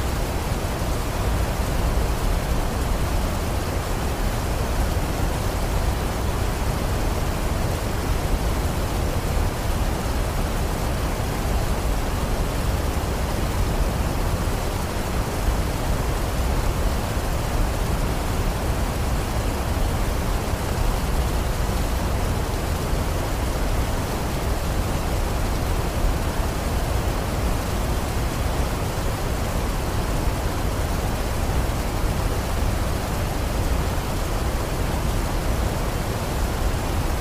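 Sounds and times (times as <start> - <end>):
waterfall rushing: 0.0 - 37.1.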